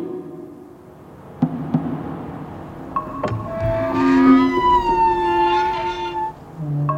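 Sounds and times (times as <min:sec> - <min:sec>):
rusty metal gate grinding and screeching open: 0:00.8 - 0:06.9.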